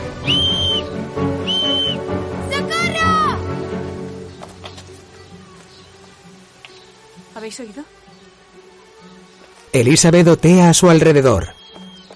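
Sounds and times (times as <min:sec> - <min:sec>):
short shrill whistle blasts: 0:00.2 - 0:02.1, 0:11.4 - 0:12.1
speech: 0:07.5 - 0:08.0, 0:09.8 - 0:11.6.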